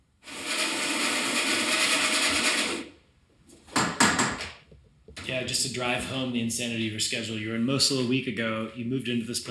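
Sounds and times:
coffee machine running with a loud mechanical whir: 0:00.2 - 0:02.9
speech: 0:05.4 - 0:09.5.

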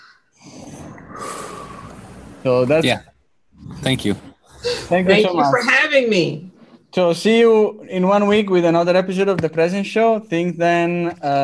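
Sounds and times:
deep breath during a mindfulness exercise: 0:00.0 - 0:02.6, 0:04.3 - 0:05.1
speech: 0:02.4 - 0:03.1, 0:03.8 - 0:04.3, 0:04.9 - 0:11.4.

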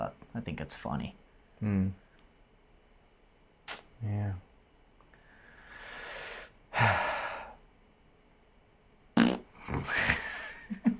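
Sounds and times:
speech: 0:00.4 - 0:02.0, 0:04.0 - 0:04.5, 0:06.8 - 0:07.1
mouth blowing bursts imitating flatulence: 0:09.2 - 0:10.2.

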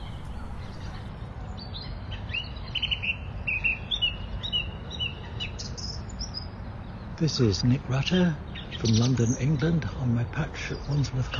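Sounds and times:
song thrush singing: 0:00.0 - 0:07.0
steady low rumble of traffic: 0:00.0 - 0:11.3
speech: 0:07.2 - 0:11.3.

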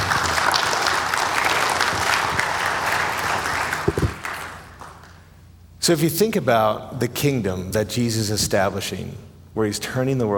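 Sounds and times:
crowd applauding: 0:00.0 - 0:05.1
speech: 0:05.8 - 0:10.3.

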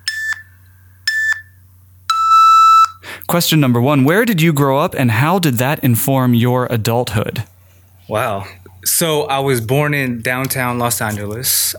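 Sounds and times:
electronic timer beeps marking an answer time limit: 0:00.0 - 0:00.5, 0:01.1 - 0:03.0
speech: 0:03.3 - 0:07.5, 0:08.1 - 0:11.7.

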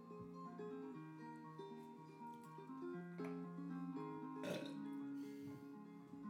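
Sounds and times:
instrumental music with plucked stepping melodic notes: 0:00.0 - 0:06.2
person burping: 0:04.4 - 0:04.8.

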